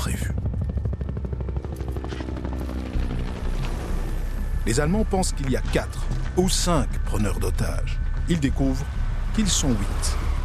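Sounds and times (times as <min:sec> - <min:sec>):
helicopters landing with rotors thumping: 0:00.0 - 0:06.7
speech: 0:04.7 - 0:10.3.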